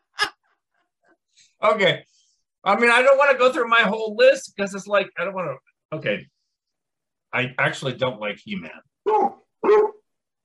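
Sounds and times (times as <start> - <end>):
speech: 1.6 - 6.3, 7.3 - 10.0
dog barking: 9.1 - 10.0.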